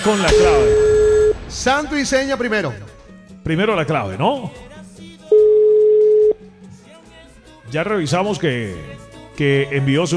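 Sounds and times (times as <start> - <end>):
speech: 0.0 - 0.8, 1.5 - 2.9, 3.5 - 4.7, 7.7 - 10.1
low hum: 0.3 - 3.2
telephone line tone as a call is dialed: 5.3 - 6.4.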